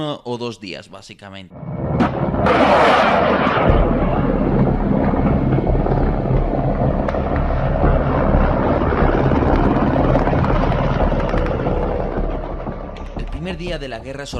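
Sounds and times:
speech: 0.0 - 4.3, 13.6 - 14.3
whooshing burst: 1.5 - 11.3
Russian Mi-17 HIP and Kamov-52 military helicopters flying overhead: 2.4 - 13.3.

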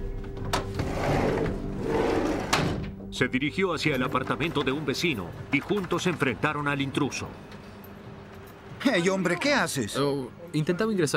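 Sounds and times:
apartment back door drawn-out scraping: 0.5 - 3.0
speech: 3.2 - 7.6, 8.8 - 11.1.

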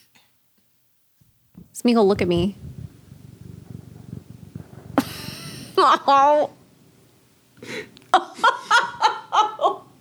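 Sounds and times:
cat purring: 1.5 - 7.0
speech: 1.8 - 2.7, 5.8 - 6.6
laughter: 5.0 - 6.4, 8.1 - 9.9.

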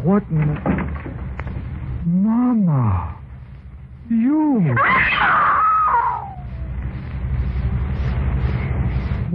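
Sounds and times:
speech: 0.0 - 0.9, 2.0 - 3.2, 4.1 - 6.0
low steady rumble: 0.0 - 9.3
woman screaming in fright: 4.8 - 6.4.

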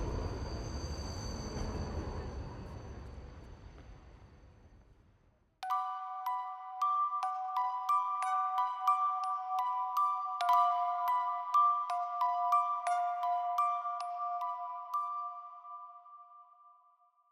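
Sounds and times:
heavy elevated train rumbling past: 0.0 - 4.8
bright repeated ding-dong chime: 5.6 - 16.9.

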